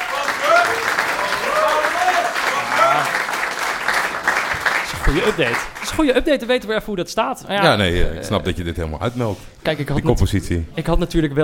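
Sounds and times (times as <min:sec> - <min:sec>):
group clapping: 0:00.0 - 0:06.0
people cheering and calling out: 0:00.0 - 0:06.0
speech: 0:05.1 - 0:11.4.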